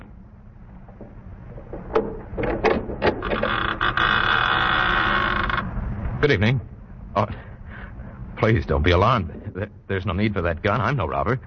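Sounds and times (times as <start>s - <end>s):
oak door of a chateau clunking and rattling: 0.8s - 4.6s
massive oak door groaning as it swings open: 0.9s - 5.8s
speech: 6.2s - 7.4s, 8.4s - 11.4s.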